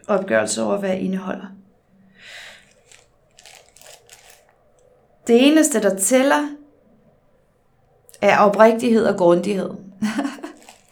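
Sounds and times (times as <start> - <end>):
speech: 0.0 - 1.6, 5.3 - 6.6, 8.2 - 10.5
paper tissue rustling and crackling from handling: 2.2 - 4.9, 10.0 - 10.9
laughter: 10.0 - 10.8.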